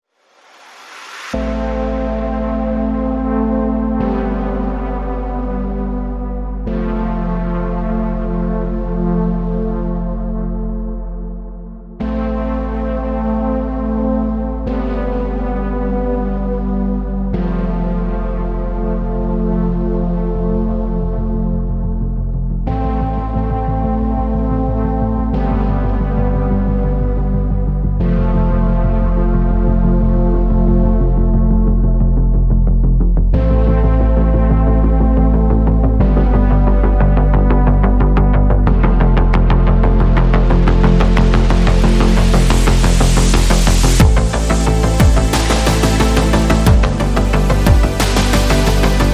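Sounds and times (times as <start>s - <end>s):
synth music without lead synth: 0.3s - 49.1s.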